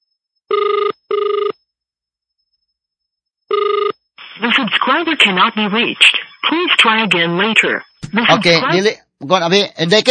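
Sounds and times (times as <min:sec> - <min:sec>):
telephone ringback tone on a call to a cellphone: 0:00.5 - 0:01.6, 0:03.5 - 0:04.0
speech: 0:05.0 - 0:10.0.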